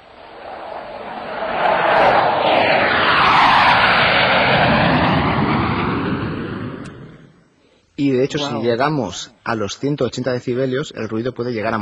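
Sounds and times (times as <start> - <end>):
airplane flying close by: 0.0 - 7.6
speech: 8.3 - 11.7.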